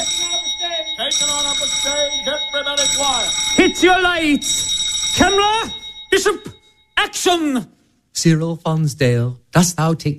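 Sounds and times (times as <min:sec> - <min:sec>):
metallic electric studio bell ringing on a film set before a take: 0:00.0 - 0:07.1
speech: 0:03.6 - 0:04.6, 0:05.2 - 0:10.1.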